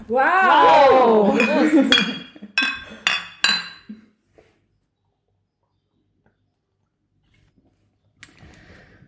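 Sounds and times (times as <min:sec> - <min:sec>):
speech: 0:00.1 - 0:02.2
glasses clinking in a toast: 0:01.2 - 0:04.0.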